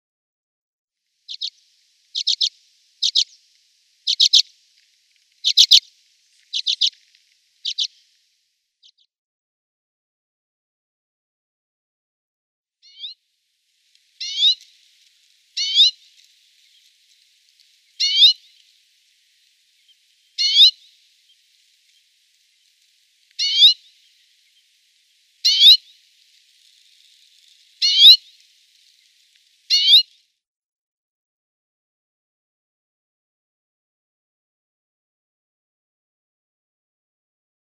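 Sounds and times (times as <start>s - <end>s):
Arctic Redpoll calls: 1.3s - 4.7s, 5.3s - 8.2s, 12.8s - 13.2s, 13.9s - 30.2s.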